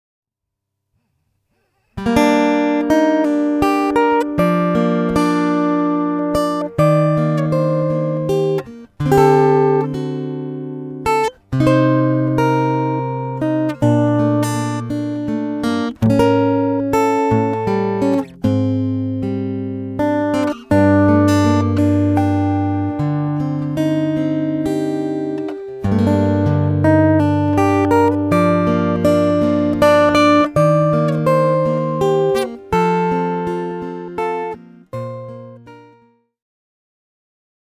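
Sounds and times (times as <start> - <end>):
dry acoustic guitar through a piezo pickup and DI: 2.0 - 36.1.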